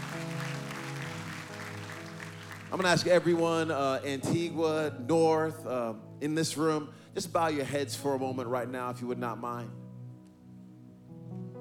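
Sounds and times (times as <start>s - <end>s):
audience clapping in a large room: 0.0s - 3.8s
speech: 2.7s - 9.8s.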